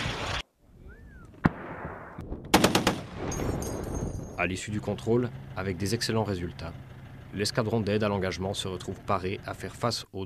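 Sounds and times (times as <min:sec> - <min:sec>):
single sharp military weapon shot during live-fire evaluation: 0:01.4 - 0:03.3
12.7 mm machine gun burst during army live-fire evaluation: 0:02.5 - 0:03.6
speech: 0:04.4 - 0:10.2.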